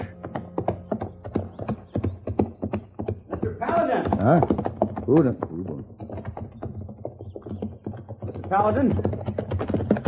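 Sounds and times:
horse hooves clip-clopping on a hard surface: 0:00.0 - 0:10.0
speech: 0:04.2 - 0:05.5, 0:08.5 - 0:09.1.

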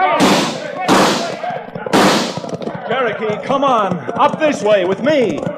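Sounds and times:
gunfire in a radio drama shootout: 0:00.2 - 0:02.5
speech: 0:02.9 - 0:05.5.

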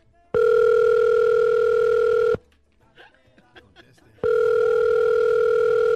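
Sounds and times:
ringback tone of an outgoing telephone call: 0:00.4 - 0:02.4, 0:04.2 - 0:05.9
laughter: 0:02.9 - 0:04.2.

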